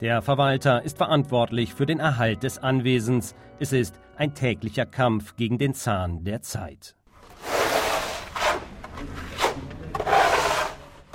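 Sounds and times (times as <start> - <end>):
speech: 0.0 - 7.0
plaster being rubbed onto a wall with rasping strokes: 7.2 - 11.0.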